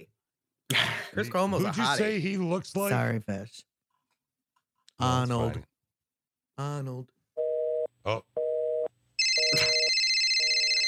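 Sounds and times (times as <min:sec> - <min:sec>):
speech: 0:01.2 - 0:03.7, 0:05.0 - 0:05.7, 0:06.6 - 0:07.2, 0:08.0 - 0:08.4, 0:09.5 - 0:09.8
telephone line clicking through tones: 0:07.4 - 0:10.8
bright electronic telephone ringer buzzing: 0:09.2 - 0:10.8
telephone busy signal pulsing: 0:09.3 - 0:09.9.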